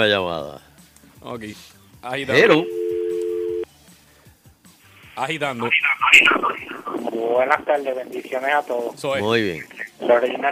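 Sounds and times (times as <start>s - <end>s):
speech: 0.0s - 0.6s, 1.2s - 2.8s, 5.2s - 10.4s
telephone line tone after the caller hung up: 2.4s - 3.6s.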